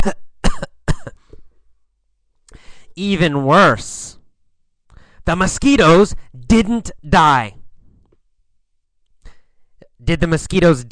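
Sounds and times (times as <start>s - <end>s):
person coughing: 0.0s - 1.4s
speech: 3.0s - 4.2s, 5.3s - 7.6s, 10.0s - 10.9s.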